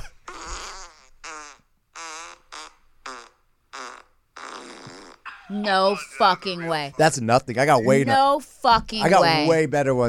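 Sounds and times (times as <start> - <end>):
loud buzzy sputtering fart blasts: 0.0 - 5.3
laughter: 5.3 - 8.4
speech: 5.5 - 10.0.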